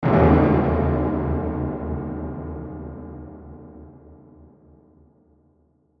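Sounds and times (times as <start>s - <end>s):
heavy hit with reverb and delay: 0.0s - 3.7s.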